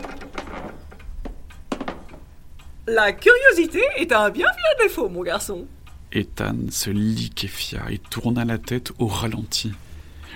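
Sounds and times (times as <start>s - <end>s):
front door creaking open: 0.0s - 2.4s
speech: 2.9s - 9.8s.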